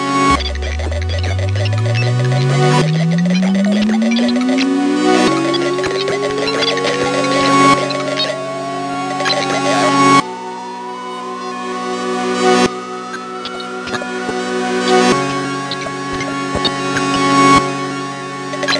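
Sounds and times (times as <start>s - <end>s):
electronic waves: 0.1s - 18.7s.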